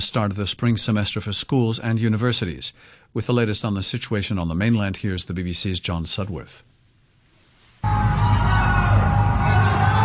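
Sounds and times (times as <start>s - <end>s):
speech: 0.0s - 6.7s
chorus of residents shouting encouragement from their homes: 7.8s - 10.0s.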